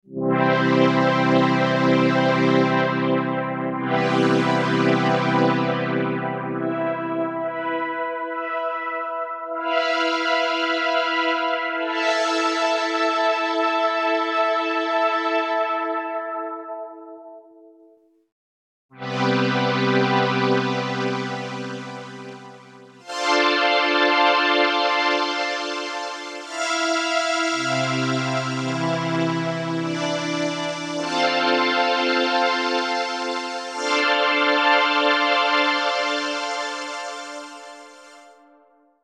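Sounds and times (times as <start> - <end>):
Solina synthesizer with LP envelope: 0.0 - 18.0, 18.9 - 39.0.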